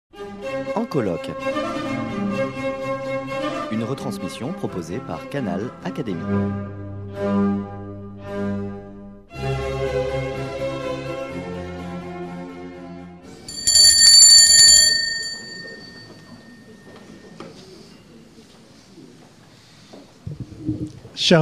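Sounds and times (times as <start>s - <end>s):
music: 0.1s - 13.5s
speech: 0.6s - 2.1s, 3.7s - 7.8s, 21.2s - 21.4s
small handbell rung to mark the start of a conversation session: 13.5s - 16.1s.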